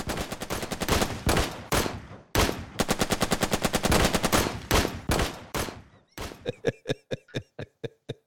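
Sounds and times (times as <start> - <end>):
automatic rifle fire: 0.0 - 6.4
single gunshots: 0.9 - 2.9, 3.9 - 6.4
laughter: 6.3 - 8.2.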